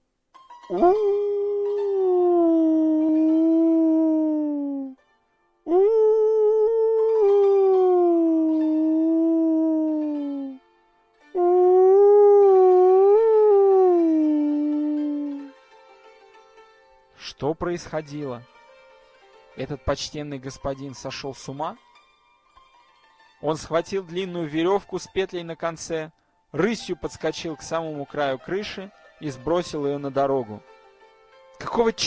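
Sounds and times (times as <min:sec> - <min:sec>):
speech: 0:00.7 - 0:01.3, 0:17.6 - 0:18.5, 0:19.6 - 0:21.9, 0:23.4 - 0:30.7, 0:31.7 - 0:32.0
man howling at the moon like a wolf: 0:00.7 - 0:05.0, 0:05.7 - 0:10.6, 0:11.4 - 0:15.5.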